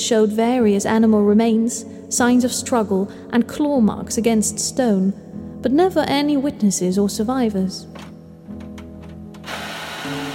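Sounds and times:
speech: 0.1 - 8.1
office printer paper feed rushing: 9.4 - 10.3
office printer whirring: 9.5 - 10.3.

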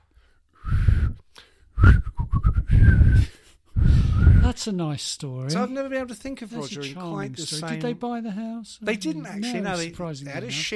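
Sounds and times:
person whistling a short jaunty tune: 0.6 - 1.2, 1.8 - 4.4
speech: 4.6 - 10.7.

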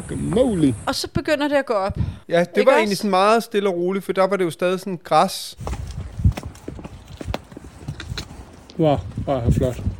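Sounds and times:
speech: 0.1 - 5.8, 8.8 - 9.9
horse hooves clip-clopping on grassy ground while riding through a valley: 5.6 - 9.9.

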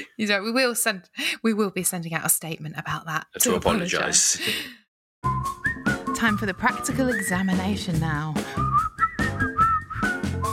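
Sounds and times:
speech: 0.0 - 5.5, 6.2 - 8.7
laughter: 3.4 - 4.7
person whistling a tune: 5.2 - 7.8, 8.4 - 10.5.

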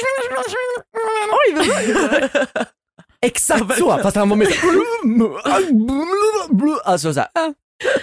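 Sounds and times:
voice imitating cartoon gibberish chatter: 0.0 - 1.6, 3.8 - 7.0
laughter: 1.5 - 2.8
speech: 1.5 - 8.0.

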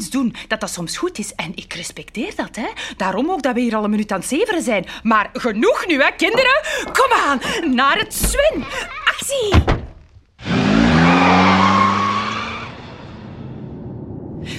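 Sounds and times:
speech: 0.1 - 9.8
car pulling away with engine roar and tire noise: 10.4 - 14.5.

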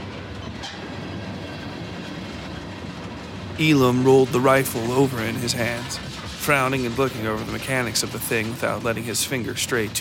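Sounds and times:
train rumbling as it pulls into station: 0.0 - 9.9
speech: 3.6 - 9.9.

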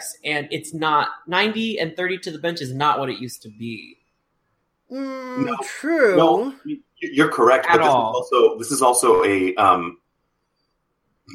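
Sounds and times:
speech: 0.2 - 4.0, 4.9 - 10.0
short throaty burp with a rough low grunting tone: 4.9 - 6.8.

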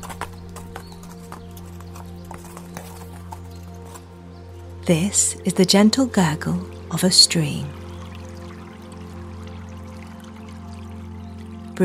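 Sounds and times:
hooves of a ridden horse clip-clopping at a walking pace: 0.0 - 5.5
speech: 4.8 - 7.8.

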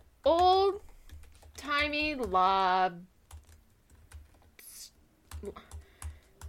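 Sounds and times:
speech: 0.2 - 0.8, 1.8 - 3.1, 5.4 - 5.7
typing on a computer keyboard: 0.3 - 2.4, 3.3 - 4.6, 5.3 - 6.4.

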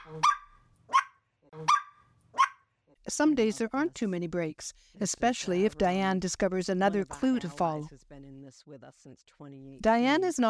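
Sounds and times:
four-month-old puppy giving sharp high-pitched barks: 0.0 - 2.7
speech: 3.1 - 10.4.

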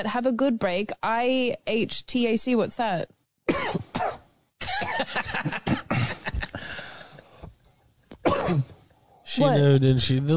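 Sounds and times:
speech: 0.0 - 3.8, 8.5 - 8.7, 9.3 - 10.3
person coughing harshly: 3.5 - 6.6, 8.2 - 8.8.

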